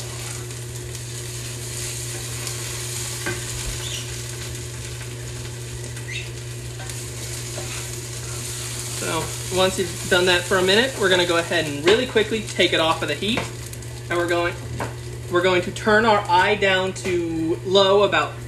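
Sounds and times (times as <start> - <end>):
low constant hum: 0.0 - 18.4
tomato frying in oil in a pan being stirred: 0.0 - 18.4
utensil scraping and clicking against a pan: 7.5 - 8.9
speech: 9.6 - 18.4.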